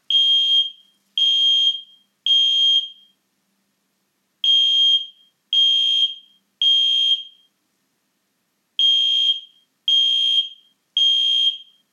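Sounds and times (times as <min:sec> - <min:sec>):
carbon monoxide alarm: 0:00.1 - 0:03.2, 0:04.4 - 0:07.5, 0:08.8 - 0:11.9.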